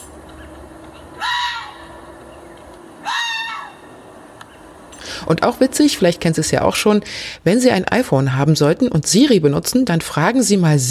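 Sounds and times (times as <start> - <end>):
fox giving harsh raspy calls: 0.4 - 2.2, 3.0 - 4.7
speech: 5.3 - 10.8.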